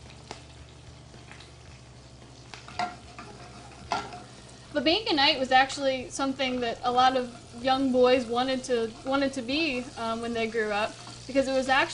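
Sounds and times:
salted food frying and browning in a pan: 0:00.0 - 0:11.9
stirring scrapes in a pan: 0:02.6 - 0:04.7, 0:06.9 - 0:11.4
speech: 0:04.8 - 0:11.9.

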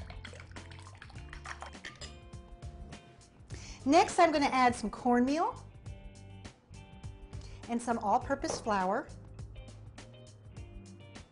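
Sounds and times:
buttermilk, chopped onion and egg being mixed in a bowl: 0:00.0 - 0:02.1
speech: 0:03.8 - 0:05.7, 0:07.7 - 0:09.2.

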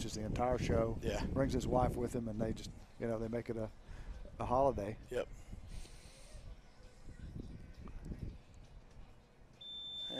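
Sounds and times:
speech: 0:00.1 - 0:03.8, 0:04.4 - 0:05.5
high steady electronic competition buzzer tone: 0:09.6 - 0:10.1.

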